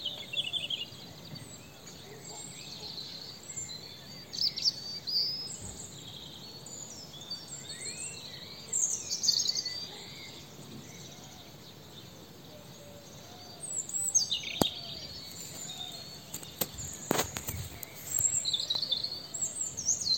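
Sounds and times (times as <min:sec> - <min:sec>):
European robin Erithacus rubecula singing: 0:00.0 - 0:20.1.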